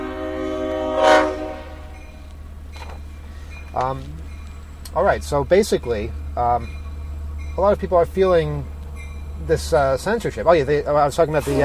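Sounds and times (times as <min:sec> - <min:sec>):
diesel train horn: 0:00.0 - 0:02.3
slow diesel train rumbling on tracks: 0:00.0 - 0:11.6
speech: 0:03.8 - 0:04.3, 0:04.9 - 0:06.8, 0:07.6 - 0:08.7, 0:09.4 - 0:11.6.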